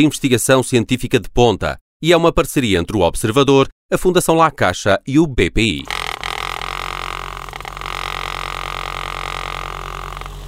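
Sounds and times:
speech: 0.0s - 6.0s
small motor of a laboratory vortex mixer whirring with rattling vibration: 5.8s - 10.4s.

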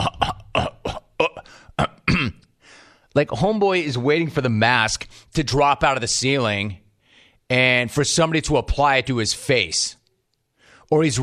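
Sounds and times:
man repeatedly clearing his throat: 0.0s - 2.5s
speech: 3.2s - 6.8s, 7.5s - 10.0s, 10.9s - 11.2s.

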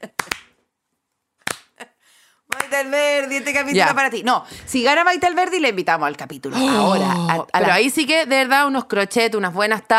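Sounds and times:
sharp hand claps: 0.0s - 0.6s, 1.4s - 1.8s, 2.5s - 2.8s
speech: 2.7s - 9.9s.

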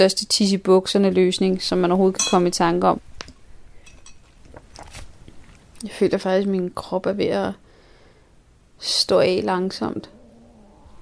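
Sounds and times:
speech: 0.0s - 3.1s, 5.8s - 7.6s, 8.8s - 10.2s
person's stomach growling: 9.9s - 11.0s.

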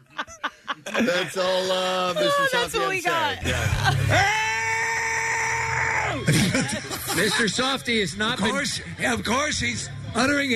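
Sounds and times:
laughter: 0.0s - 4.8s, 6.0s - 8.6s
speech: 1.0s - 4.5s, 6.3s - 10.5s
high-pitched scream of joy: 4.1s - 6.3s.

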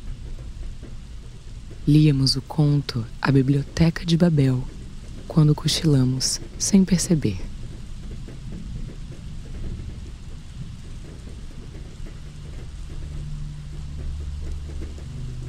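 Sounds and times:
steady rain pattering against a window: 0.0s - 15.4s
speech: 1.8s - 7.5s.

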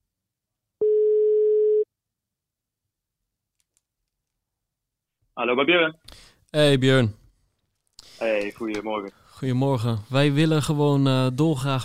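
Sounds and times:
telephone ringing tone while placing a call: 0.8s - 1.9s
speech: 5.4s - 7.2s, 8.2s - 11.8s.

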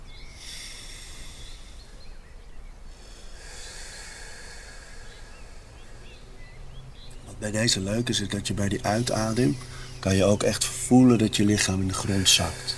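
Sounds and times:
slow deep inhalations during a morning breathing exercise: 0.0s - 7.1s, 9.1s - 10.1s, 12.2s - 12.7s
speech: 7.4s - 12.7s.

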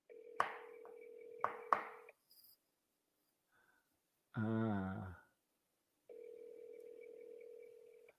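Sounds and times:
telephone ringback tone: 0.1s - 1.7s, 6.1s - 8.1s
speech: 4.4s - 4.8s
person speaking a brief syllable: 4.4s - 5.2s.

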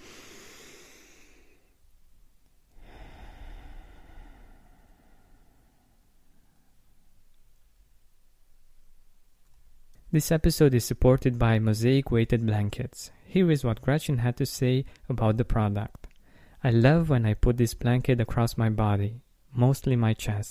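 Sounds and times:
slow deep breath in and out: 0.0s - 1.8s, 2.7s - 7.1s, 16.2s - 16.6s
speech: 10.1s - 20.4s.

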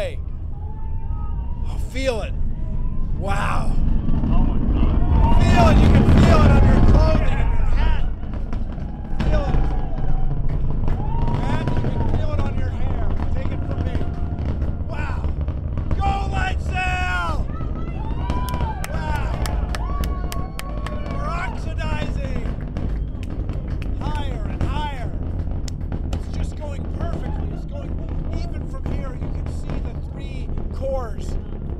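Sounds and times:
people's excited voices: 0.0s - 10.2s, 11.0s - 22.5s, 26.3s - 28.8s
rocket launch engine roar with diamond shock crackling: 0.0s - 31.7s
speech: 2.0s - 2.4s, 3.2s - 3.9s, 5.6s - 6.4s.

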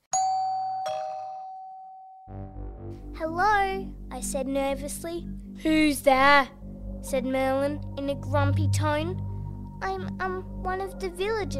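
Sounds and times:
two-tone doorbell chime: 0.1s - 2.3s
speech: 2.3s - 11.5s.

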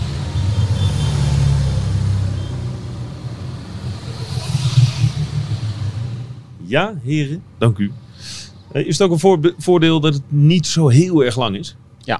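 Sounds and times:
convoy of motorcycles rumbling past: 0.0s - 6.6s
speech: 6.7s - 12.1s.

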